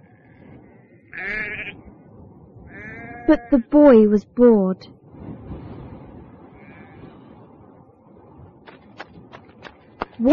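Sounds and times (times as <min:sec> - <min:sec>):
sheep bleating: 0:00.0 - 0:01.8, 0:02.7 - 0:03.7, 0:06.6 - 0:07.0
speech: 0:03.2 - 0:05.0, 0:10.2 - 0:10.3.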